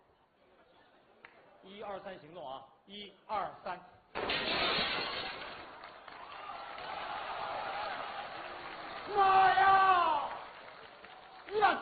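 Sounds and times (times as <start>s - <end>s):
speech: 1.6s - 5.5s, 9.1s - 9.5s
falling glass shards and debris jangling: 4.2s - 5.7s
glass pane shattering: 4.2s - 5.8s.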